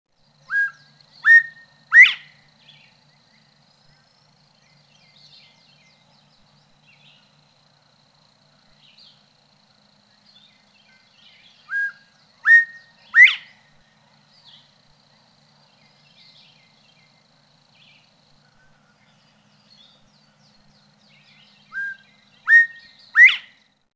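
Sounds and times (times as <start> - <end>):
Northern bobwhite three-note whistled call: 0.5 - 2.3, 11.7 - 13.5, 21.7 - 23.6.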